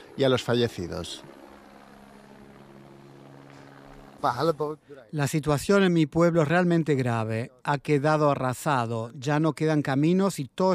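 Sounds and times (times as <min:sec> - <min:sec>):
helicopter rotor droning: 0:00.0 - 0:09.4
speech: 0:00.2 - 0:01.4, 0:04.2 - 0:10.7.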